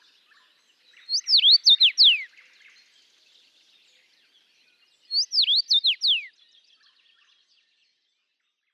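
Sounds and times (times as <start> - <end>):
faint chirps from other birds: 0.0 - 8.1
common rosefinch song in Latvia: 0.2 - 3.0, 5.0 - 7.3.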